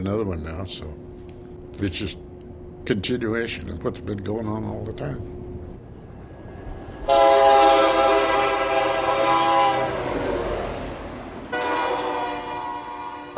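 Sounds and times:
speech: 0:00.0 - 0:01.1, 0:01.8 - 0:05.4
low rumble of coal train rail noise: 0:00.0 - 0:13.3
coal train horn blasting: 0:07.0 - 0:10.8, 0:11.5 - 0:13.3.

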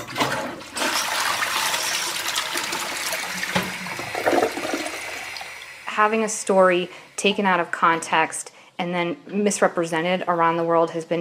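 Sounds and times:
gurgling trickles of toilet water: 0:00.0 - 0:05.8
toilet flushing: 0:00.0 - 0:07.4
speech: 0:06.0 - 0:11.1.

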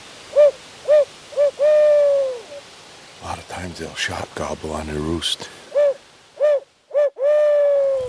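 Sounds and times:
imitated owl hoots blown on a turkey hunter's hunting call in moonlit woods: 0:00.3 - 0:02.6, 0:05.7 - 0:08.0
speech: 0:03.8 - 0:05.6.

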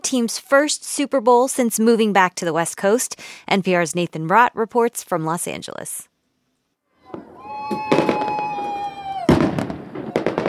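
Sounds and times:
speech: 0:00.1 - 0:06.1
whistling rocket gliding downward: 0:07.0 - 0:10.4
fireworks bursting over a stadium with booms and crackles: 0:07.1 - 0:10.4.

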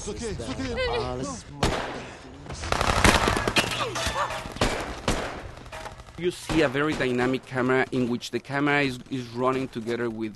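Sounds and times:
speech: 0:00.0 - 0:02.9, 0:03.8 - 0:04.8, 0:06.2 - 0:10.3
rapid bursts of gunfire in a film battle scene: 0:01.6 - 0:07.8.

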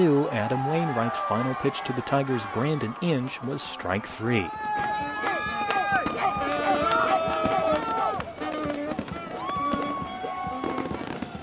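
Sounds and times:
speech: 0:00.0 - 0:07.4
crowd cheering at a ballpark celebrating a baseball victory: 0:00.0 - 0:11.4
fireworks banging and crackling at a ballpark: 0:04.6 - 0:11.4.

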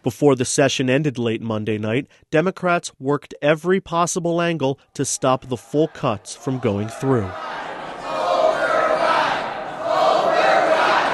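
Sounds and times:
speech: 0:00.0 - 0:07.7
union members and healthcare advocates cheering and shouting outside a legislative chamber: 0:05.4 - 0:11.1.

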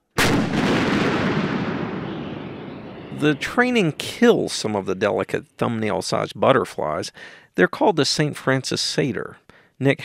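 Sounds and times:
Army howitzer firing a high-explosive shell in artillery training: 0:00.2 - 0:05.2
speech: 0:03.2 - 0:10.0.

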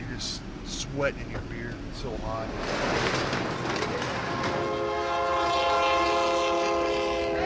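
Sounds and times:
train rumbling past: 0:00.0 - 0:07.4
speech: 0:00.9 - 0:04.3
train horn blaring: 0:04.3 - 0:07.4.

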